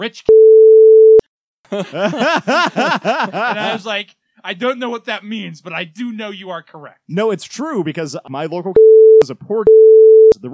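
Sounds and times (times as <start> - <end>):
speech: 0.0 - 0.6, 1.7 - 10.5
censorship bleep: 0.3 - 1.2, 8.8 - 10.4
laughter: 1.7 - 4.0.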